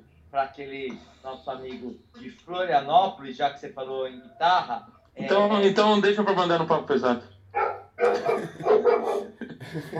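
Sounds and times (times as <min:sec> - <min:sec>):
speech: 0:00.3 - 0:09.9
dog barking and yelping: 0:07.5 - 0:09.3
laughter: 0:08.0 - 0:09.9.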